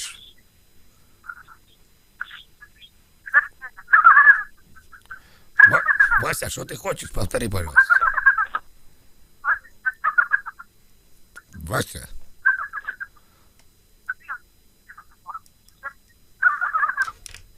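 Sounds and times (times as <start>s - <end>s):
pet raven making raspy chattering calls over a phone line: 1.2s - 6.6s, 7.3s - 8.6s, 9.4s - 10.7s, 12.4s - 13.2s, 14.1s - 17.2s
speech: 6.4s - 8.0s, 11.7s - 12.1s.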